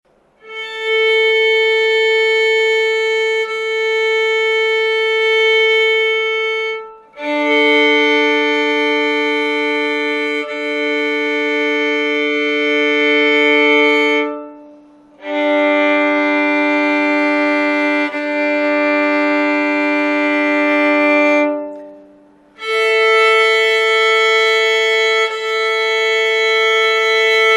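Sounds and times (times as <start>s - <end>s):
violin tuning: 0.1s - 27.5s.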